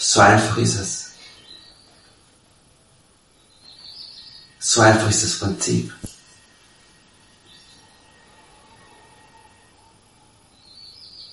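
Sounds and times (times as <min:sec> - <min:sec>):
birds chirping: 0:00.0 - 0:02.4, 0:03.2 - 0:08.2, 0:10.5 - 0:11.3
soft steady outdoor hiss: 0:00.0 - 0:11.3
speech: 0:00.1 - 0:01.0, 0:04.8 - 0:06.2.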